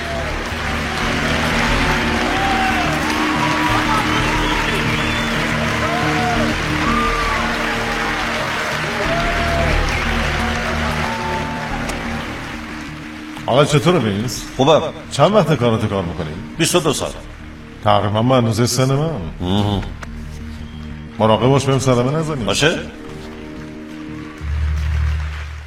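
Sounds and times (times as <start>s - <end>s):
scattered cheers: 0.0s - 12.7s
crowd applauding: 0.0s - 17.6s, 20.6s - 25.6s
speech: 13.5s - 20.1s, 21.2s - 23.0s.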